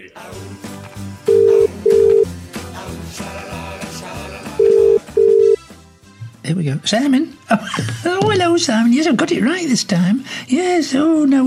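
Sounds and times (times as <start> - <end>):
music: 0.0 - 11.4
telephone keypad touch-tone beeps dialing a number: 1.3 - 2.2, 4.6 - 5.6
speech: 6.5 - 11.4.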